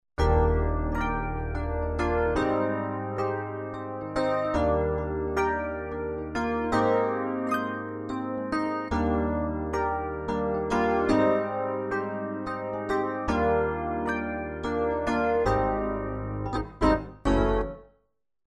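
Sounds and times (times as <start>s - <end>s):
Yamaha TG500 synthesizer: 0.2s - 18.0s.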